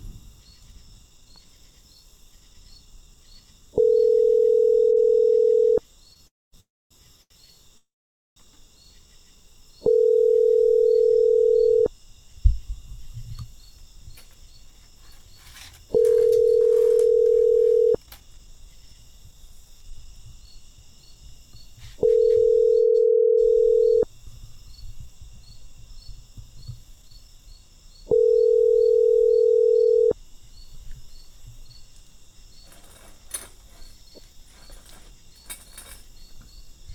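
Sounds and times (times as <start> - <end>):
telephone ringback tone: 3.8 - 5.8, 9.8 - 11.9, 15.9 - 18.0, 22.0 - 24.1, 28.1 - 30.2.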